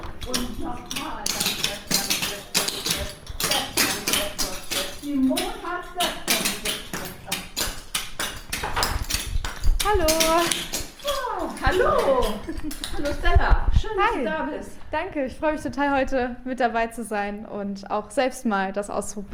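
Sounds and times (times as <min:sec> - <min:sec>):
clogging dance shoes tapping on a hard floor: 0:00.2 - 0:13.1
speech: 0:14.0 - 0:19.3.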